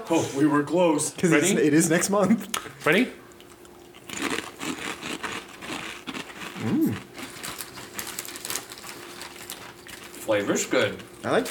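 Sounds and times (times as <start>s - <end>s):
speech: 0.1s - 3.2s, 10.3s - 11.4s
crunching on super-crispy cheesy snack chips: 3.8s - 11.4s.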